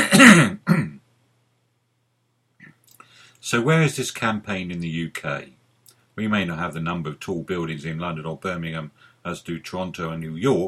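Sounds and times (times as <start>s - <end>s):
person clearing throat: 0.0s - 1.0s
rough cough-like burst: 0.0s - 1.0s
speech: 0.2s - 0.8s, 3.5s - 5.6s, 6.2s - 10.6s.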